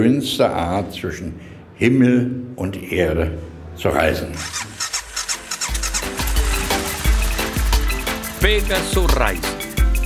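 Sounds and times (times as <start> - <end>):
speech: 0.0 - 4.9, 8.4 - 9.6
motorcycle engine starting and idling: 4.4 - 8.6.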